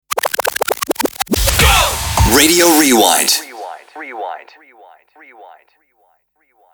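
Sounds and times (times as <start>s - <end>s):
radio rewind stinger: 0.1s - 5.4s.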